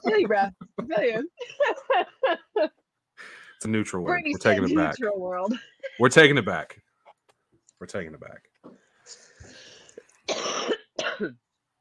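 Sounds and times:
laughter: 0.0 - 2.7, 4.1 - 5.0
speech: 0.2 - 2.8, 3.6 - 6.8, 7.8 - 9.2, 11.2 - 11.4
person clearing throat: 10.3 - 11.4
person coughing while on a parasite cleanse: 10.3 - 11.4.

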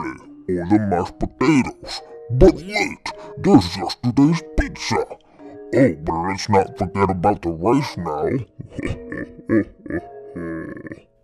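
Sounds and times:
speech: 0.0 - 11.1
voice imitating a hungry stomach growling and grumbling: 8.5 - 11.2.

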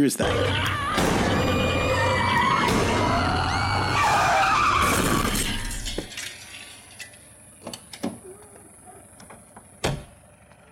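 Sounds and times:
car crashing into a person: 0.2 - 7.5
car tires screeching in a skid: 0.2 - 7.6.

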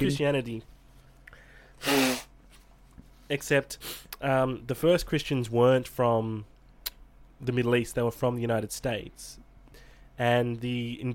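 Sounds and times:
speech: 0.0 - 0.8, 3.3 - 6.5, 7.4 - 9.4, 10.2 - 11.1
sneeze: 1.8 - 2.3.

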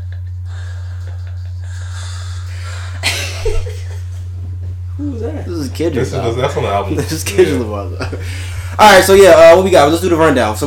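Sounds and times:
laughter: 0.0 - 4.4, 6.4 - 8.7
man breathing heavily and roughly: 0.4 - 3.1
speech: 5.0 - 10.6.

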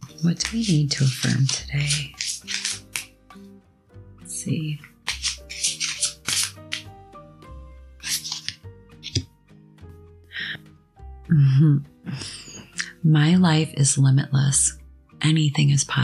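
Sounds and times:
deck of cards being shuffled: 0.0 - 3.2, 5.0 - 6.9, 8.0 - 9.3
soft steady tonal music: 0.0 - 16.0
speech: 0.2 - 2.6, 4.4 - 4.9, 11.3 - 11.9, 13.0 - 16.0.

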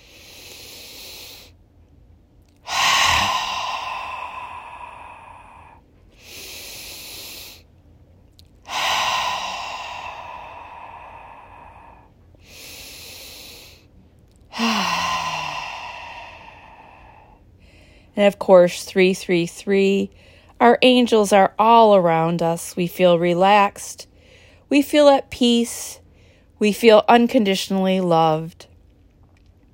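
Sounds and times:
loud hissing exhale in a seated relaxation exercise: 0.0 - 1.5, 2.6 - 7.6, 8.7 - 13.8
quiet deep inhale in a seated relaxation exercise: 0.0 - 1.6, 2.6 - 7.7, 8.6 - 13.9, 14.5 - 18.2, 20.1 - 20.6, 24.1 - 24.7, 26.0 - 26.6
speech: 18.2 - 24.1, 24.7 - 26.0, 26.6 - 28.7.

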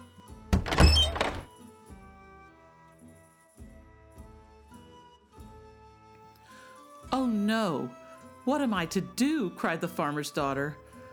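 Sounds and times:
heavy door shutting: 0.5 - 1.5
latch or lock rattling: 0.6 - 1.5
speech: 7.2 - 10.8.

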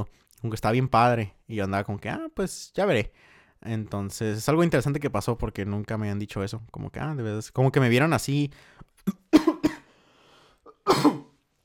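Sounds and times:
speech: 0.0 - 9.3
harsh coughs: 9.1 - 9.9, 10.7 - 11.4.

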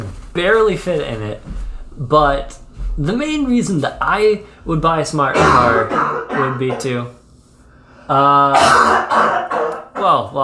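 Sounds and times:
speech: 0.4 - 7.2, 8.1 - 9.4, 10.0 - 10.4
person clearing something stuck in the back of the throat: 5.3 - 7.1, 8.4 - 10.3.

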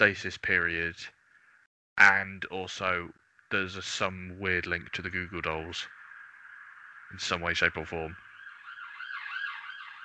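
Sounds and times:
speech: 0.0 - 1.2, 2.0 - 6.0, 7.1 - 8.2
emergency vehicle siren wailing: 8.2 - 10.0.

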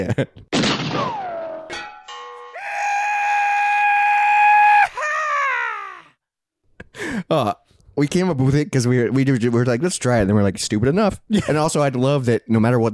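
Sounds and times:
speech: 0.0 - 1.9, 7.3 - 12.9
sharp bang: 0.6 - 2.0
person hollering a long drawn-out yeehaw: 2.6 - 6.2.

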